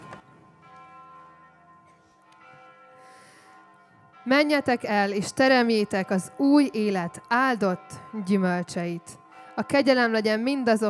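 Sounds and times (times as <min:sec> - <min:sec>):
church bell ringing: 0:00.0 - 0:10.8
speech: 0:04.2 - 0:10.8.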